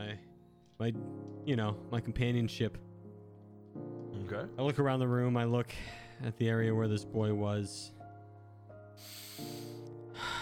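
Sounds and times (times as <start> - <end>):
speech: 0.0 - 2.9, 3.8 - 8.0
breathy sniffs through the nose: 9.0 - 9.8.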